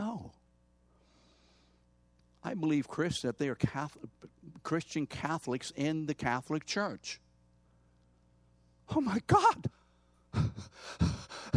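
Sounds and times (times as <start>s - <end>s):
speech: 2.5s - 7.2s, 8.9s - 11.2s
fast heavy breathing: 10.3s - 11.5s.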